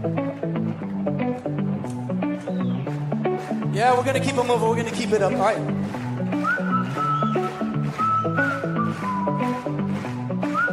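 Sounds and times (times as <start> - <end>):
full band accompaniment: 0.0 - 10.7
clear sliding whistled melody: 2.3 - 3.0, 6.3 - 10.7
speech: 3.8 - 6.0.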